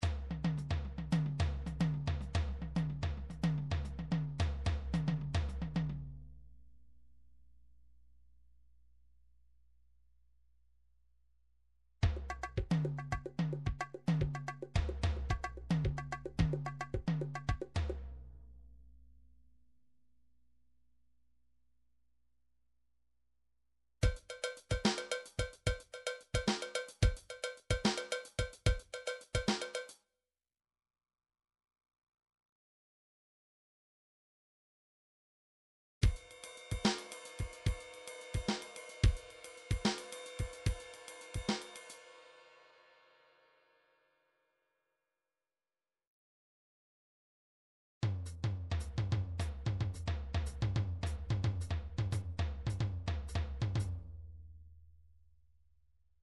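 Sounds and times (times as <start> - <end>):
midi drums: 0.0 - 6.1, 12.0 - 18.1, 24.0 - 30.0, 36.0 - 42.0, 48.0 - 54.2.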